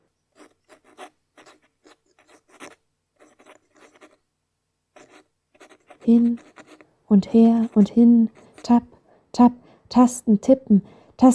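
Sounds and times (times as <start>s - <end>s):
pen scratching on paper: 0.3s - 4.2s, 4.9s - 9.0s
speech: 6.1s - 6.5s, 7.1s - 11.3s.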